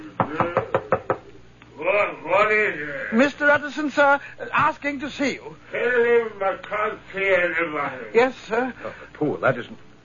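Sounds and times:
speech: 0.2 - 0.6, 2.5 - 9.9
quick sharp knocks on a laboratory door: 0.2 - 1.2.

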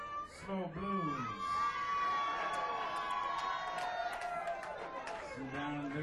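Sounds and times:
audience at a performance yelling song requests: 0.0 - 6.0
speech: 0.4 - 1.6, 5.4 - 6.0.

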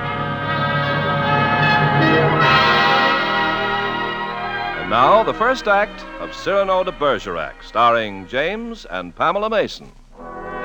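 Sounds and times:
bell ringing with a silvery tone: 0.6 - 7.2
speech: 5.0 - 10.3.

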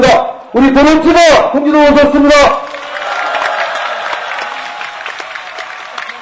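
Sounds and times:
speech: 0.5 - 2.8
audience applause: 2.6 - 6.2.

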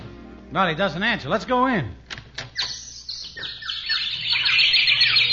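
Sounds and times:
speech: 0.6 - 2.0
many birds chirping and singing: 2.6 - 5.3.

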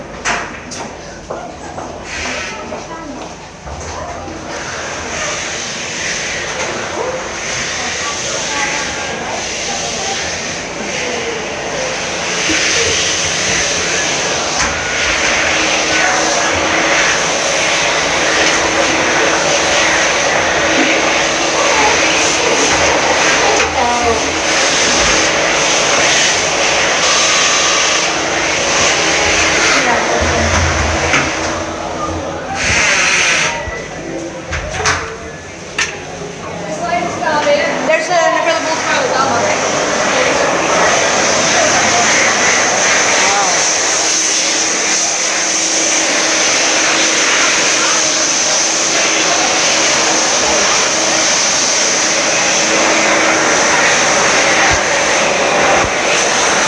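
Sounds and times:
hand dryer: 0.0 - 56.6.

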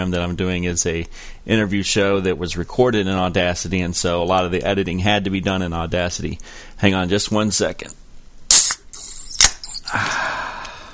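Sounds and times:
speech: 0.0 - 8.6
can of Guinness draft cracking open: 8.5 - 9.8.

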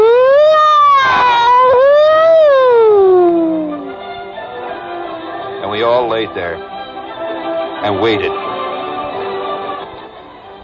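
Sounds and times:
siren wailing from a prank car bomb: 0.0 - 4.1
speech: 6.2 - 6.7, 7.8 - 8.5.

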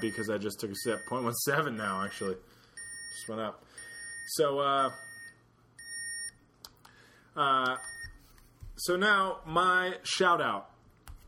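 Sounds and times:
speech: 0.0 - 5.1, 7.4 - 8.0, 8.8 - 10.7
breathalyzer beeping: 0.0 - 6.4.

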